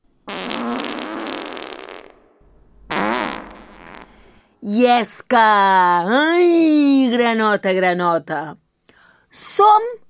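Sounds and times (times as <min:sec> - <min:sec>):
fart sound effect: 0:00.3 - 0:04.2
speech: 0:04.6 - 0:08.6, 0:09.3 - 0:10.0.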